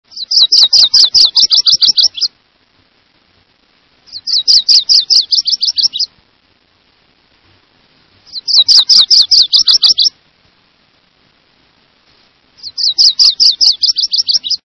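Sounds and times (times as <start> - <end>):
Virginias warbler: 0.1 - 2.4, 4.0 - 6.2, 8.2 - 10.2, 12.6 - 14.6.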